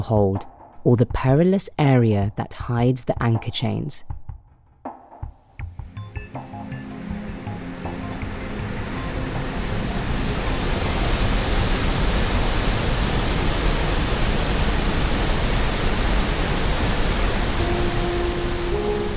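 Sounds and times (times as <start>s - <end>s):
speech: 0.0s - 4.2s
ocean waves roaring at ship rudder stock pulling out of port: 6.8s - 19.1s.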